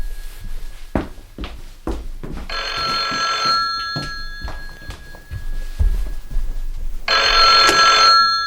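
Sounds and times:
heavy footsteps: 0.0s - 8.2s
telephone with a shrill, trilling bell ringing: 2.5s - 5.4s, 7.1s - 8.4s.

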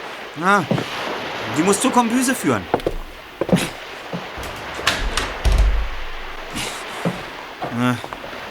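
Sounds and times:
speech: 0.4s - 2.8s, 7.8s - 8.2s
locked door handle rattling on a fishing boat: 2.8s - 7.4s
dull thuds against a locked door on a fishing boat: 2.8s - 7.5s.

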